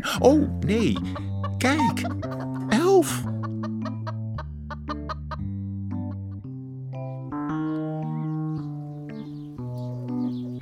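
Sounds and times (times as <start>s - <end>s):
speech: 0.0s - 2.4s, 3.0s - 3.4s
steady music backing with sustained chords: 0.0s - 10.5s
chickens clucking: 0.7s - 6.3s.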